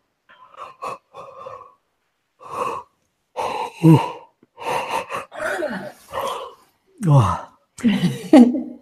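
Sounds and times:
speech: 0:03.8 - 0:04.1, 0:07.0 - 0:08.6
several people yawning together: 0:05.2 - 0:06.6.

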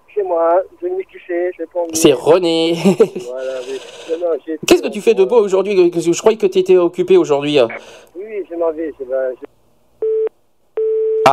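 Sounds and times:
speech: 0:00.2 - 0:09.5
laughter: 0:02.7 - 0:04.2
telephone busy tone beeps: 0:10.0 - 0:11.3.

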